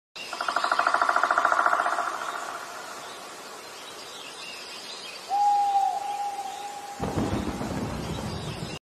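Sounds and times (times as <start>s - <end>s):
forest at night: 0.2s - 8.8s.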